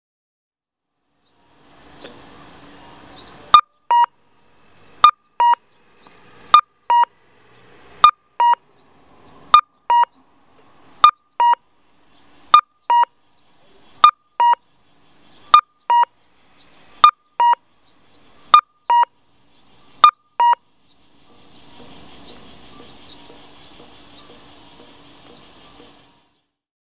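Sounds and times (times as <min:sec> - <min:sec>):
cuckoo audible traffic signal at intersection in Anjo Aichi: 0:01.9 - 0:04.2, 0:04.8 - 0:07.2, 0:07.8 - 0:08.7, 0:09.4 - 0:10.2, 0:11.0 - 0:11.6, 0:12.5 - 0:19.2, 0:19.8 - 0:26.3.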